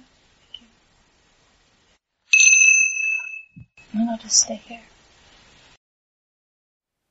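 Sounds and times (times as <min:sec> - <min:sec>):
single bell struck with a clear metallic tone: 0:02.3 - 0:03.6
speech: 0:03.9 - 0:04.9.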